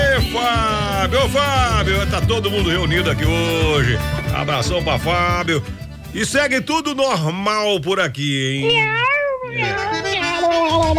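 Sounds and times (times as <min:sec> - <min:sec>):
speech: 0:00.4 - 0:10.9
cat meowing: 0:08.6 - 0:10.9.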